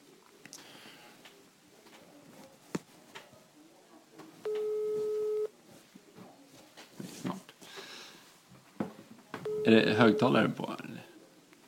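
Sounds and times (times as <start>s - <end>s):
outgoing phone call ringing tone: 4.4s - 5.5s, 9.4s - 10.4s
speech: 9.7s - 10.7s.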